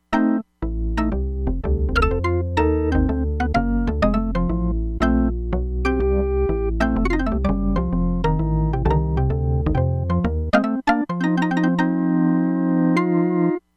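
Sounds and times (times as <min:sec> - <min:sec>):
Crumar Bit 99 synthesizer: 0:00.0 - 0:13.7
Hammond B3 organ: 0:00.1 - 0:13.6.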